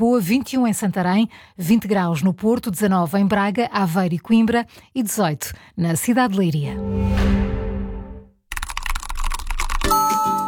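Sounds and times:
speech: 0.0s - 7.5s
fast typing on a computer keyboard into a chat: 8.5s - 10.4s
chime: 9.9s - 10.4s.

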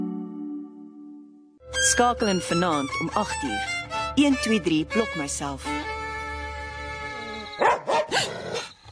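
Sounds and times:
speech: 1.9s - 5.9s
dog barking: 7.6s - 8.7s.

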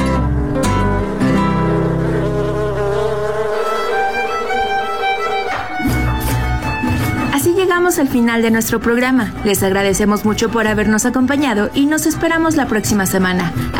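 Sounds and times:
bees buzzing around a beekeeper: 0.1s - 7.3s
speech: 8.0s - 13.7s.

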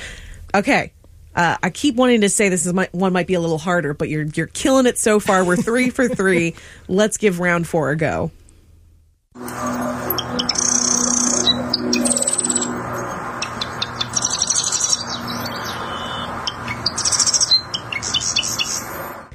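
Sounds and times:
speech: 0.5s - 8.4s
laughter: 5.2s - 6.5s
marsh wren singing buzzy rattling trills: 10.0s - 19.1s.

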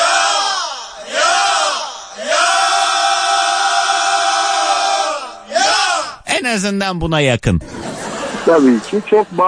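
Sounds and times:
crowd shouting for a radio broadcast in Gaziantep: 0.0s - 6.2s
speech: 6.5s - 9.4s
laughter: 7.5s - 9.4s.

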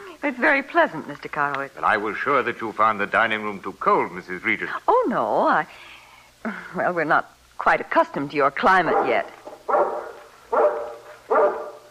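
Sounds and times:
speech: 0.2s - 9.4s
large mountain guard dog barking: 8.8s - 11.8s.

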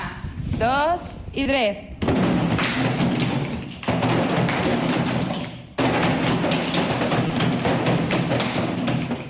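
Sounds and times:
speech: 0.6s - 1.9s
many children drumming a rhythm on chairs: 2.0s - 9.2s.

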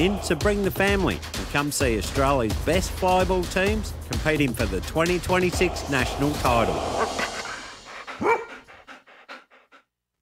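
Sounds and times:
speech: 0.0s - 7.3s
dog panting: 7.0s - 9.9s
dog barking: 8.2s - 8.7s.

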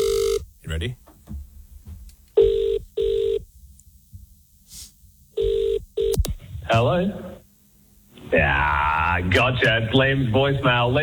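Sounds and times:
telephone ringing with an incoming call: 0.0s - 0.4s, 2.4s - 3.4s, 5.4s - 6.2s
speech: 0.8s - 1.4s, 6.7s - 7.3s, 8.3s - 11.0s.

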